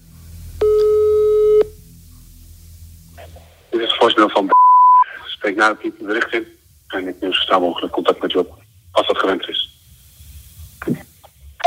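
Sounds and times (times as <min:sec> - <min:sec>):
faint hiss: 0:00.0 - 0:11.6
telephone line tone while placing a call: 0:00.6 - 0:01.7
speech: 0:04.0 - 0:04.6, 0:05.4 - 0:09.7.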